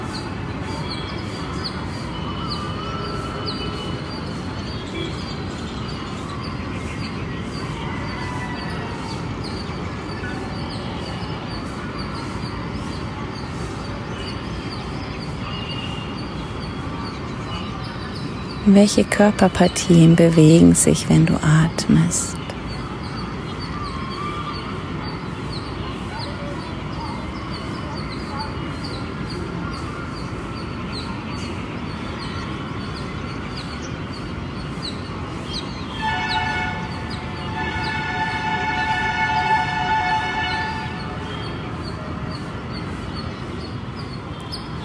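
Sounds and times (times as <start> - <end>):
scattered bird calls: 0.0 - 44.8
steady rumble of traffic in Tiruvannamalai, India: 0.0 - 44.8
speech: 18.7 - 22.4
long, loud horn-like blare: 35.9 - 41.4.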